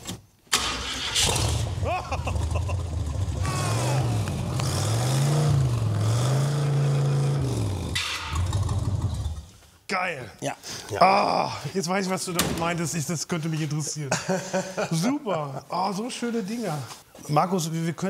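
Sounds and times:
engine of a 1990s vehicle starting and revving: 0.5s - 9.5s
laughter: 1.8s - 3.1s, 13.9s - 15.7s
speech: 10.0s - 18.0s.

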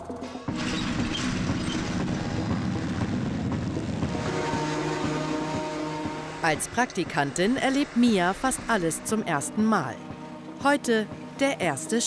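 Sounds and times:
heavy tractor engine droning while driving: 0.5s - 9.3s
speech: 6.4s - 12.0s.

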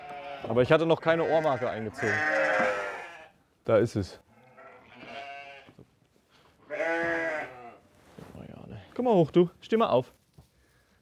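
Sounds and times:
sheep and a lamb bleating in a stall: 0.0s - 3.4s, 4.3s - 5.8s, 6.6s - 7.9s
speech: 0.4s - 2.8s, 3.7s - 4.2s, 9.0s - 10.2s
faint shuffling: 5.7s - 10.9s.

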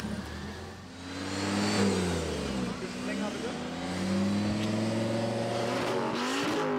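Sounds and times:
tuned car engine revving at high RPM during noise test: 0.0s - 6.7s.

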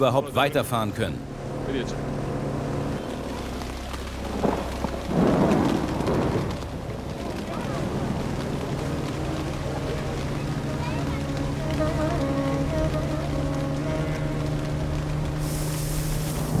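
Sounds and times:
speech: 0.0s - 2.2s
steady rain hissing and pattering: 0.0s - 16.5s
low rolling thunder: 2.4s - 16.5s
faint voices: 7.0s - 15.0s.

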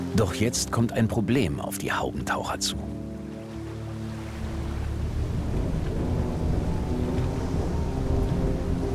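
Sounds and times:
speech: 0.2s - 3.0s
thunderstorm over a lake: 4.6s - 8.9s.

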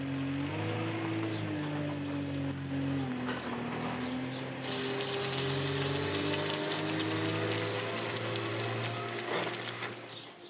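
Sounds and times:
low machine hum: 0.0s - 10.4s
electric welding of metal on a farm: 4.6s - 10.4s.

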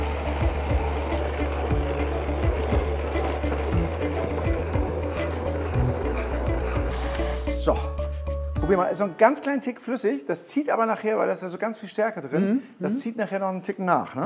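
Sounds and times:
blender pureeing a dish seasoned with turmeric, salt and apple balsamic vinegar: 0.0s - 7.8s
speech: 7.7s - 7.9s, 8.7s - 14.2s.

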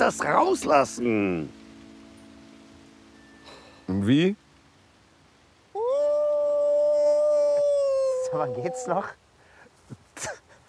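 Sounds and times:
speech: 0.1s - 1.6s, 3.9s - 4.4s, 8.3s - 9.2s, 10.2s - 10.4s
person imitating a wolf howl: 5.7s - 9.2s.

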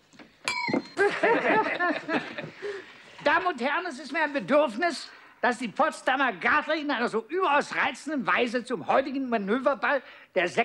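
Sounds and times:
bright glass clink from tapping on a glass: 0.4s - 1.2s
laughter: 1.0s - 2.9s
speech: 1.2s - 10.6s.

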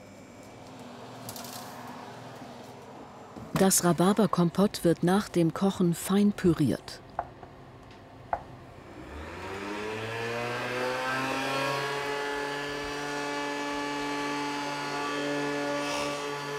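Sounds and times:
ice cream machine motor churning rhubarb puree: 0.0s - 3.4s, 7.6s - 16.5s
speech: 3.4s - 7.0s.

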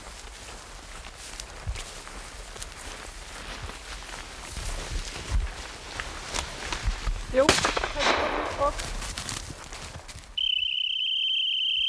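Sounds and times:
rustling breezy noise: 0.0s - 10.6s
rifle shot fired into the air outdoors: 7.5s - 8.8s
steady high-pitched dog whistle: 10.4s - 11.8s.

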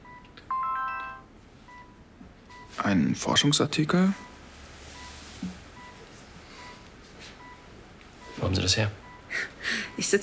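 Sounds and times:
smartphone voice assistant chime opening a file: 0.5s - 1.2s
speech: 2.8s - 4.3s, 8.7s - 10.2s.

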